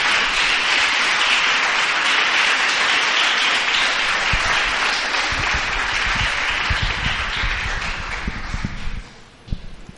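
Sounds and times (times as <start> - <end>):
large audience applauding: 0.0 - 9.1.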